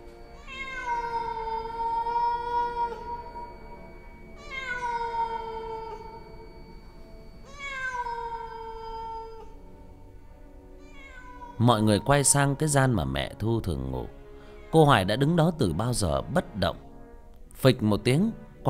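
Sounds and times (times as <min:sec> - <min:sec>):
cat yowling plaintively: 0:00.3 - 0:06.7, 0:07.4 - 0:09.8, 0:10.8 - 0:12.4, 0:14.5 - 0:14.9
speech: 0:11.6 - 0:16.8, 0:17.6 - 0:18.6.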